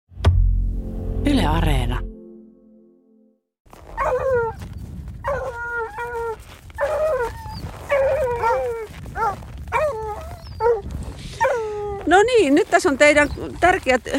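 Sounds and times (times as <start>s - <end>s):
low rumbling background: 0.2s - 2.3s
speech: 1.5s - 2.1s, 12.4s - 14.1s
Bernese hounds howling and whimpering: 4.0s - 4.6s, 5.2s - 12.3s.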